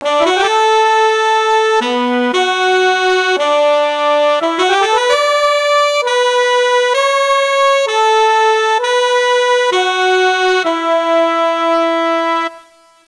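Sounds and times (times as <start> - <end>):
sustained brass section: 0.0 - 13.0.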